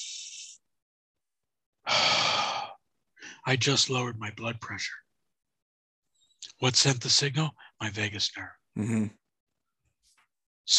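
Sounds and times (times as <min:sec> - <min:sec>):
deep cleansing breath in and out: 0:01.9 - 0:03.4
speech: 0:03.4 - 0:05.1, 0:06.6 - 0:09.2.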